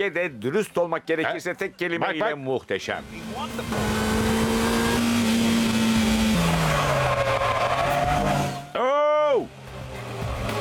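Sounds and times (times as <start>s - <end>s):
speech: 0.0s - 4.2s
car engine accelerating as the driver presses the gas: 3.0s - 8.7s, 9.5s - 10.6s
car tire squeal: 3.7s - 8.8s.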